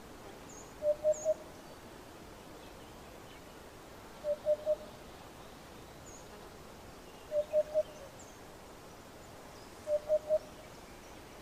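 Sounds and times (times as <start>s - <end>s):
faint high chirps from other birds: 0.5s - 1.8s, 4.2s - 5.0s, 7.1s - 8.4s, 9.5s - 11.3s
Eurasian hoopoe singing soft low hollow hoots in triplets: 0.8s - 1.4s, 4.2s - 4.9s, 9.8s - 10.6s.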